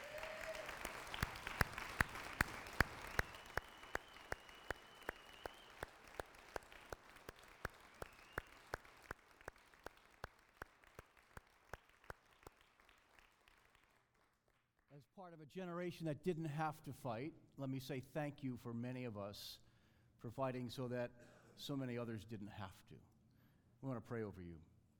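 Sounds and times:
large church audience applauding veterans: 0:00.0 - 0:14.4
speech: 0:15.1 - 0:19.6, 0:20.2 - 0:23.1, 0:23.8 - 0:24.7.

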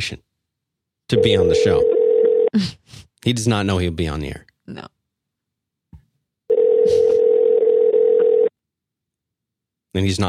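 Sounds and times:
speech: 0:00.0 - 0:00.3, 0:01.1 - 0:05.0, 0:10.0 - 0:10.2
telephone ringback tone on an outgoing call: 0:01.2 - 0:02.5, 0:06.5 - 0:08.5.

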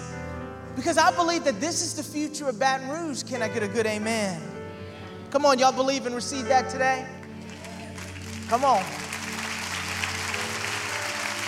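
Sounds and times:
speech: 0:00.8 - 0:04.6, 0:05.3 - 0:07.2, 0:08.5 - 0:09.0
crowd clapping: 0:07.2 - 0:11.4.

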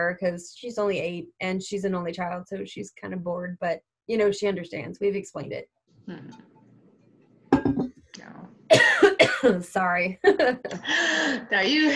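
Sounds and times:
speech: 0:00.0 - 0:06.5, 0:07.7 - 0:11.9
person coughing from a dry throat: 0:08.7 - 0:09.6.

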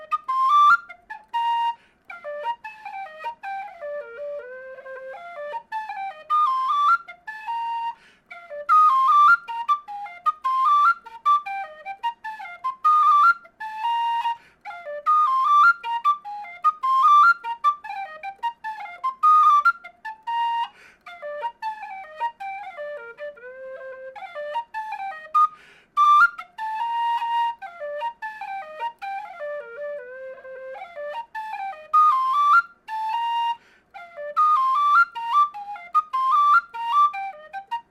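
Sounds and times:
lively folk tune played solo on a B-flat tin whistle: 0:00.0 - 0:37.8.

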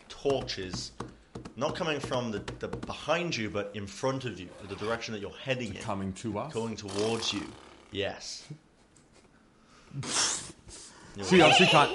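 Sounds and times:
speech: 0:00.2 - 0:08.6, 0:10.0 - 0:10.3, 0:11.2 - 0:11.9
person imitating a horse whinnying: 0:11.2 - 0:11.9.

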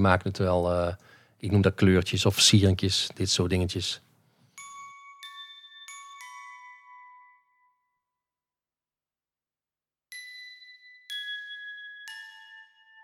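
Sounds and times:
speech: 0:00.0 - 0:04.1
small glockenspiel playing soft ringing metallic notes: 0:04.4 - 0:08.6, 0:10.1 - 0:13.0.

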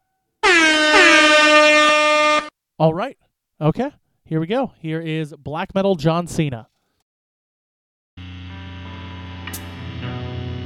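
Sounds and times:
air horn blasts: 0:00.4 - 0:02.5
speech: 0:02.8 - 0:06.7.

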